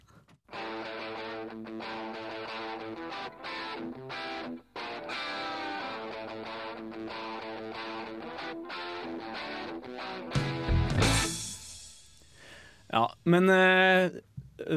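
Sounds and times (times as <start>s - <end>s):
loud distorted rock music with electric guitar and drums: 0.5s - 12.7s
speech: 13.0s - 14.7s.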